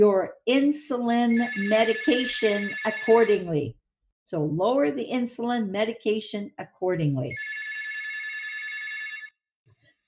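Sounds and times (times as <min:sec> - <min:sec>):
speech: 0:00.0 - 0:07.5
telephone ringing in an office with electronic trill: 0:01.3 - 0:03.5, 0:07.3 - 0:09.4.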